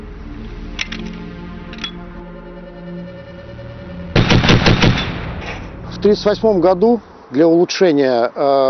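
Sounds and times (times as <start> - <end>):
DShK heavy machine gun firing: 4.2 - 5.6
speech: 6.0 - 8.6.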